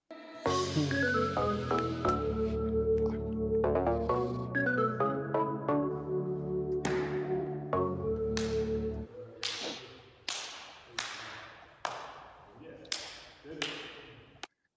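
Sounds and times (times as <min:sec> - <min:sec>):
music: 0:00.0 - 0:09.2
hands slapping together in high fives: 0:06.7 - 0:07.5, 0:08.2 - 0:14.5.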